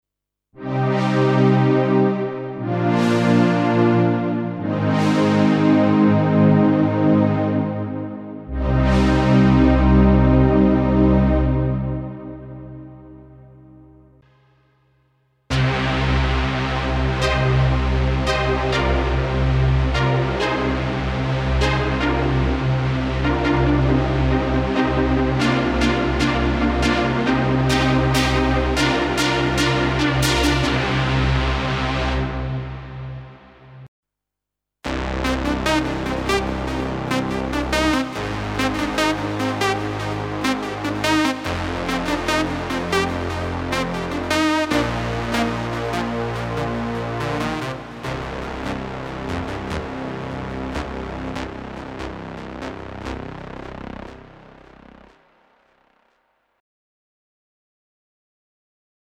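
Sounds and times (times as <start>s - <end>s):
Korg Pa5X synth pads: 0.6s - 14.2s, 15.5s - 33.9s, 34.9s - 56.1s.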